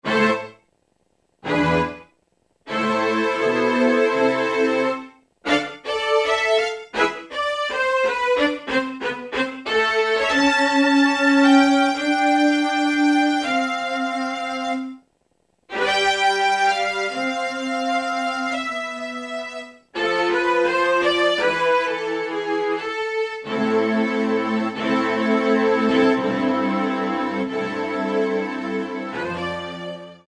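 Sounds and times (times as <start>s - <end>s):
synthesizer violin preset: 0.0s - 0.6s, 1.4s - 2.1s, 2.7s - 15.0s, 15.7s - 30.2s.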